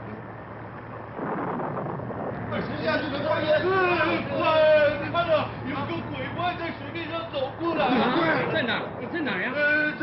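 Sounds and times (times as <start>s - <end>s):
low rumble of thunder: 0.0s - 6.3s
storm on a churning sea at night: 0.0s - 6.6s, 7.2s - 10.0s
speech: 2.5s - 10.0s.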